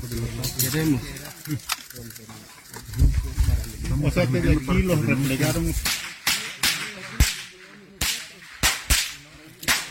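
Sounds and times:
speech: 0.0s - 6.1s
sharp real gunshots: 5.7s - 9.8s.

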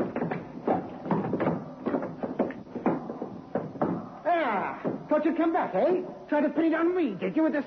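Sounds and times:
scuffle with bumps and shuffling: 0.0s - 5.4s
running footsteps across a club dance floor: 0.0s - 6.3s
speech: 5.2s - 7.6s.

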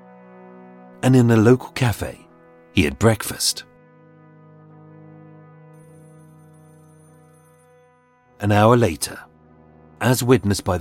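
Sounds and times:
speech: 1.0s - 2.2s, 2.8s - 3.7s, 8.4s - 9.3s, 10.0s - 10.7s
telephone ringing in a flat through thin walls: 5.8s - 8.2s.

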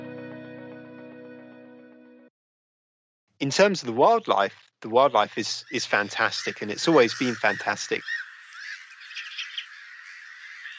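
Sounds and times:
speech: 3.4s - 8.1s
geese honking in a park: 5.1s - 10.7s.

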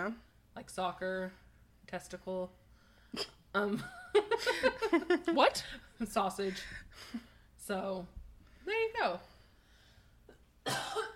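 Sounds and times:
speech: 0.0s - 9.3s
harsh cough: 10.6s - 11.1s.

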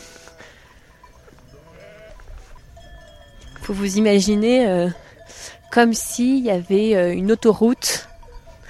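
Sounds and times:
flock of sheep bleating while herded: 1.4s - 2.5s
speech: 3.7s - 5.0s, 5.8s - 8.1s.

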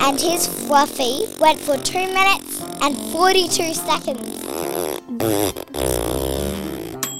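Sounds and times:
long buzzy fart with wobbling pitch: 0.0s - 7.1s
speech: 0.1s - 4.6s, 5.2s - 6.7s.

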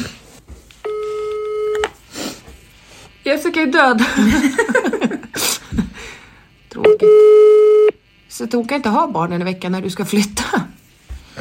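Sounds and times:
ringback tone of an outgoing phone call: 0.8s - 1.9s, 6.9s - 8.0s
speech: 3.3s - 5.5s, 8.4s - 10.8s
laughter: 4.0s - 6.0s.

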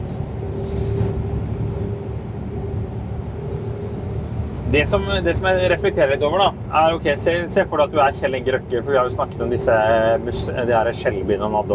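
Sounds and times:
Unimog truck engine rumbling while driving in farm countryside: 0.0s - 11.7s
speech: 4.7s - 11.7s.

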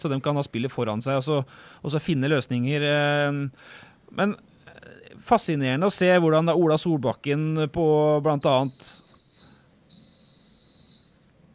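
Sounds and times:
speech: 0.0s - 9.0s
faint low noise: 0.0s - 11.5s
dishwasher electronic beeps: 8.4s - 11.4s.

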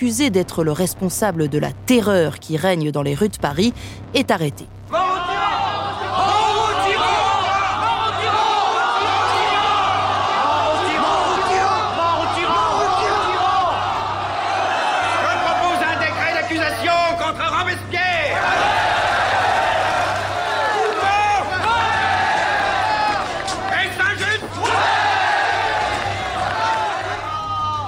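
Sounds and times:
speech: 0.0s - 5.0s
packed hall of deputies shouting in an assembly in Paris: 4.9s - 17.3s, 18.1s - 27.8s.

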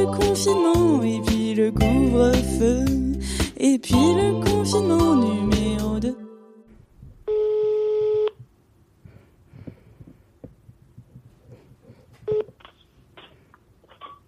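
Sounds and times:
speech: 0.0s - 6.2s
loud buzzy telephone tone as a call is placed: 7.3s - 8.4s.

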